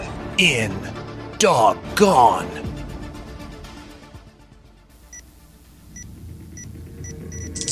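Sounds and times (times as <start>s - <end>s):
person imitating barking dogs: 0.4s - 2.6s
speech: 0.4s - 2.6s.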